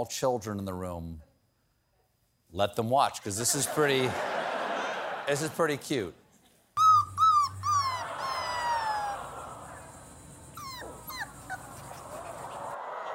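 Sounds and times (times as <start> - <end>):
speech: 0.0 - 1.3, 2.5 - 4.4, 5.3 - 6.2
faint noise: 0.0 - 13.1
laughter: 3.3 - 6.1, 7.8 - 10.3, 11.4 - 13.1
newborn puppy whimpering and whining: 6.8 - 12.8.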